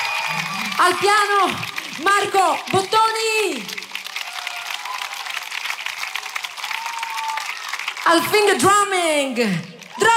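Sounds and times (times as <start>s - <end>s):
faint cheers or voices from the audience: 0.0s - 1.0s, 4.1s - 7.8s
audience applause for musicians on stage: 0.0s - 8.9s
speech: 0.3s - 3.8s, 8.1s - 10.1s.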